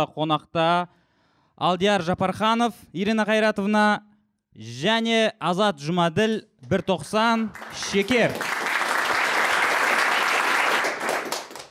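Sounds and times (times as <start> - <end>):
speech: 0.0 - 1.0, 1.6 - 8.6
live show audience applauding: 7.6 - 11.6.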